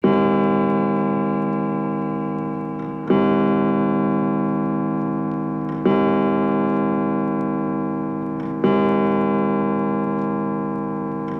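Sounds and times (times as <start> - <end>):
grandfather clock: 0.0 - 11.3.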